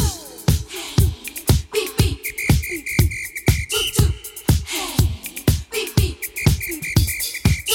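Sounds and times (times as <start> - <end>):
fast steady percussive beat: 0.0 - 7.7
sustained fairly loud whistle tones: 2.1 - 4.6, 6.2 - 7.7.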